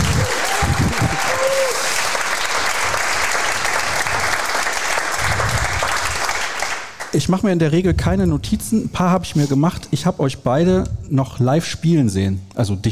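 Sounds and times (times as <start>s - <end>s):
audience cheering: 0.0s - 6.7s
live audience clapping: 0.0s - 7.5s
speech: 7.2s - 12.9s.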